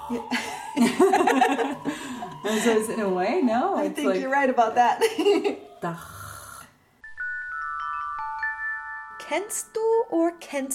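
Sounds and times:
speech: 0.1s - 1.2s, 2.4s - 6.2s, 9.3s - 10.7s
laughter: 0.2s - 2.8s, 5.0s - 5.7s
person imitating a snore with a raspy throaty inhale: 5.8s - 6.8s
steady ringing chime tones: 7.0s - 10.1s.

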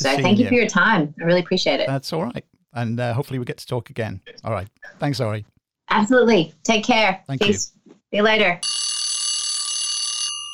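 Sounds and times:
speech: 0.0s - 8.8s
electric alarm bell ringing with a harsh metallic buzz: 8.6s - 10.5s.

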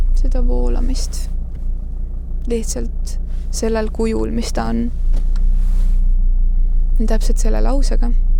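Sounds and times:
car engine idling while parking: 0.2s - 6.0s
speech: 0.3s - 1.4s, 2.4s - 5.2s, 7.0s - 8.3s
faint clicks: 0.6s - 5.4s.

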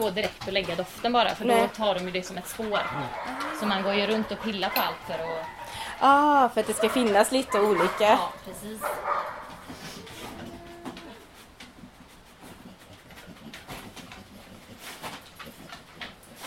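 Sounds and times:
speech: 0.0s - 9.0s
dog sniffing while searching for a scent: 0.0s - 10.4s, 11.2s - 16.4s
dog whining faintly: 1.5s - 1.7s, 2.8s - 5.8s, 9.8s - 11.3s.

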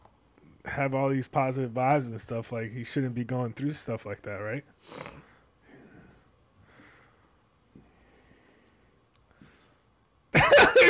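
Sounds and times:
speech: 0.8s - 5.3s
heavy breathing against the microphone: 4.8s - 9.9s.

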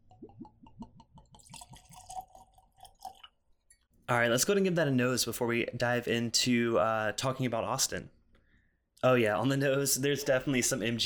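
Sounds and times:
drink glugging from a bottle: 0.0s - 3.8s
speech: 4.1s - 8.2s, 9.0s - 11.0s.

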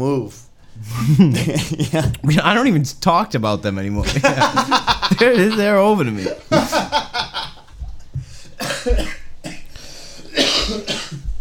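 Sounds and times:
speech: 0.0s - 7.5s, 8.8s - 9.2s
laughter: 0.8s - 2.4s, 4.0s - 7.8s
person coughing after laughing: 8.6s - 11.3s.

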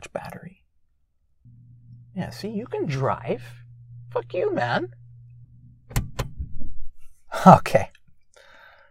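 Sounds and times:
speech: 0.1s - 0.5s, 2.2s - 5.0s, 7.4s - 7.9s
garage door opening with low mechanical rumble: 1.5s - 6.8s.

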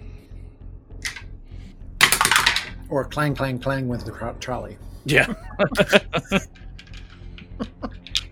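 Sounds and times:
small dice rolled for initiative clattering onto a tabletop: 1.0s - 1.2s, 2.0s - 2.8s, 6.7s - 8.3s
speech: 2.9s - 6.6s
laughter: 5.1s - 6.5s, 7.5s - 8.1s.

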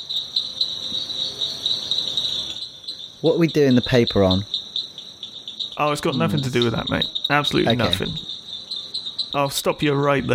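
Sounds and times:
dense chorus of frogs trilling: 0.0s - 10.3s
several people chatting: 3.2s - 4.5s, 5.8s - 8.2s, 9.4s - 10.3s
speech: 3.2s - 4.5s, 5.8s - 8.3s, 9.3s - 10.3s.

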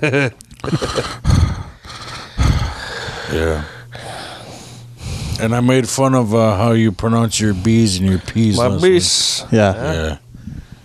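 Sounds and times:
speech: 0.0s - 1.5s, 3.3s - 3.7s, 5.4s - 10.2s
voice imitating heavy mechanical mask breathing: 0.6s - 5.4s.

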